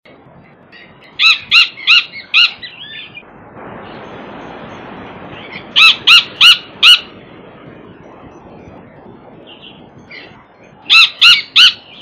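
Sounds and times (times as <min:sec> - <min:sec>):
Crested Gallito Rhinocrypta lanceolata calling: 0:00.7 - 0:03.2, 0:05.4 - 0:07.2, 0:09.4 - 0:12.0.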